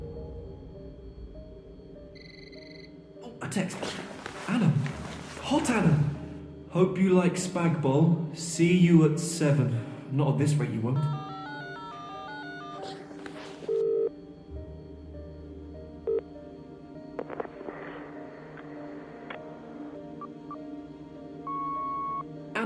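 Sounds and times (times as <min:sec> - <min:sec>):
speech: 0:03.4 - 0:06.1, 0:06.8 - 0:11.2
telephone dialing tones to an unavailable number: 0:11.0 - 0:12.9, 0:13.7 - 0:14.1, 0:21.5 - 0:22.2.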